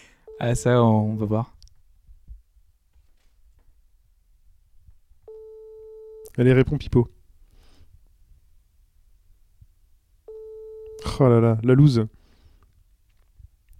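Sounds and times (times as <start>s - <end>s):
outgoing phone call electronic ringing tone heard through the line: 0.3s - 0.9s, 5.3s - 6.2s, 10.3s - 11.2s
speech: 0.4s - 1.6s, 6.4s - 7.2s, 11.2s - 12.2s.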